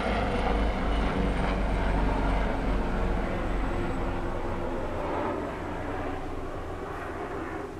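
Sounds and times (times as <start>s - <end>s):
helicopter flying overhead: 0.0s - 7.7s.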